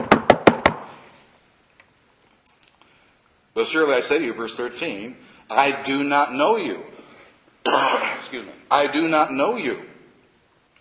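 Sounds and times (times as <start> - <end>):
firm knocking on a door: 0.0 - 0.8
speech: 3.6 - 6.9, 7.7 - 9.9.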